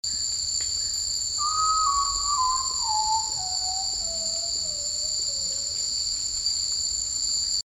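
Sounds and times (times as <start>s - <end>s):
Common Potoo Nyctibius griseus griseus: 1.4s - 5.8s.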